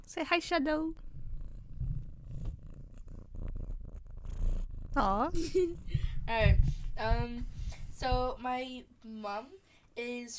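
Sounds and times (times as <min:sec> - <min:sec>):
speech: 0:00.1 - 0:01.1, 0:05.0 - 0:10.3
pet cat purring: 0:00.9 - 0:08.3.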